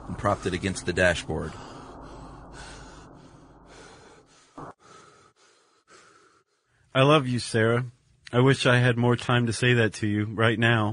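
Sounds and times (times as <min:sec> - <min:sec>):
speech: 0:00.2 - 0:01.8, 0:07.0 - 0:10.9
heavy ragged panting: 0:01.5 - 0:06.7.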